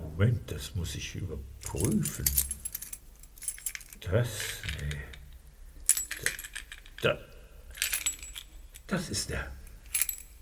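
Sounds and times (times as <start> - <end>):
speech: 0.2 - 2.6, 4.0 - 5.1, 7.0 - 7.3, 8.9 - 9.6
bunch of keys jangling: 1.6 - 5.2, 5.9 - 7.1, 7.7 - 8.9, 9.6 - 10.3.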